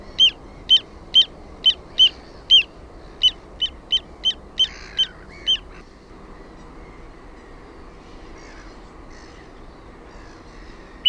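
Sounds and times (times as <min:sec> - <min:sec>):
little ringed plover calling: 0:00.0 - 0:05.8, 0:10.2 - 0:11.0.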